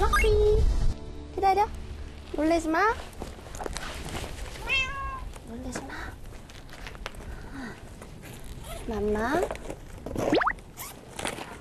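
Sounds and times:
low outdoor hum: 0:00.0 - 0:11.6
faint rustling: 0:01.8 - 0:11.6
speech: 0:02.4 - 0:03.2, 0:08.9 - 0:09.8
cat meowing waiting for food in an alley: 0:04.6 - 0:05.3.

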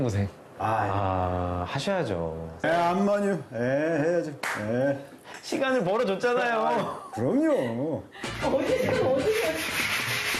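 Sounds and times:
speech: 0:00.0 - 0:09.8
laughter: 0:06.7 - 0:09.8
sandpaper rubbing back and forth over wood: 0:09.0 - 0:10.3.

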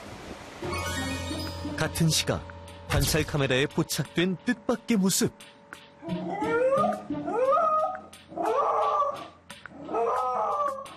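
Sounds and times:
speech: 0:01.8 - 0:06.2
pet wailing and howling mournfully: 0:06.0 - 0:10.9.

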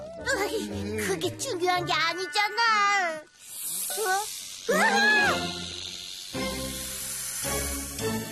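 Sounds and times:
speech: 0:00.6 - 0:03.3, 0:04.0 - 0:05.7
snake hissing: 0:03.2 - 0:08.3
short voiced cries and sung-like vocal sounds: 0:04.7 - 0:05.6.

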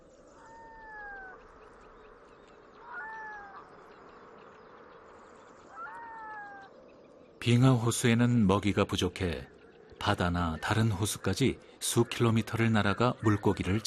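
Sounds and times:
red-throated loon calling at its breeding ground: 0:00.0 - 0:07.1
steady hiss: 0:00.0 - 0:13.8
speech: 0:07.4 - 0:13.8.

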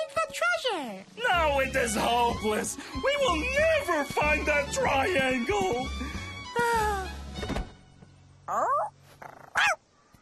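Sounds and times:
speech: 0:00.3 - 0:07.2, 0:08.5 - 0:09.0
dog growling: 0:08.5 - 0:09.8
dog barking: 0:09.5 - 0:09.8.

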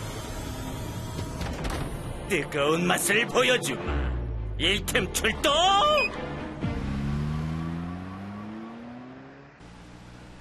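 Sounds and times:
speech: 0:02.3 - 0:06.3
car engines revving and accelerating with a rising whine: 0:06.2 - 0:10.4.

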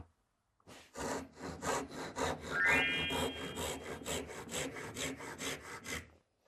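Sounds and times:
hand saw cutting through wood: 0:00.7 - 0:06.2
whistling squeal: 0:02.5 - 0:04.2.

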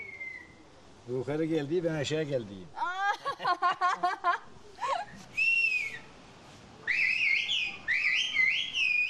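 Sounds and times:
villagers conversing in a whistled language: 0:00.0 - 0:00.6, 0:05.3 - 0:06.1, 0:06.9 - 0:09.0
speech: 0:01.1 - 0:04.6
laughter: 0:03.0 - 0:05.1.

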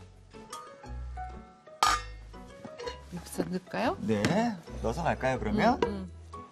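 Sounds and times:
cooking pot metallic clink: 0:01.8 - 0:02.2
speech: 0:03.1 - 0:06.2.

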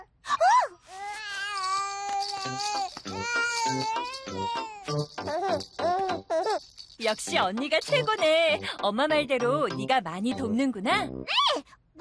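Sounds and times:
baby crying while being weighed on a hard surface: 0:00.9 - 0:06.7
speech: 0:02.4 - 0:12.0.

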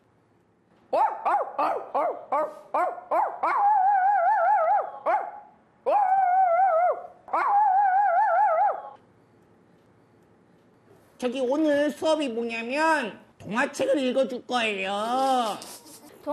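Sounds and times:
speech: 0:00.9 - 0:02.9, 0:11.2 - 0:16.3
person imitating puppy barks: 0:01.0 - 0:05.3, 0:05.9 - 0:09.0
person imitating big dog barks and howls: 0:03.4 - 0:05.0, 0:05.9 - 0:09.0.

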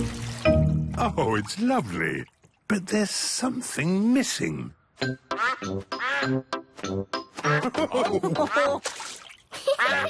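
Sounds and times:
watery splashing: 0:00.0 - 0:03.6, 0:08.3 - 0:10.0
speech: 0:01.0 - 0:10.0
duck quacking: 0:05.3 - 0:06.4, 0:08.4 - 0:08.8, 0:09.8 - 0:10.0
laughter: 0:07.5 - 0:08.8, 0:09.5 - 0:10.0.

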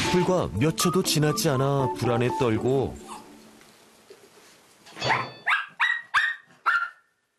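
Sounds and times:
speech: 0:00.1 - 0:03.0
anxious dogs barking in an empty hallway: 0:05.1 - 0:07.0.

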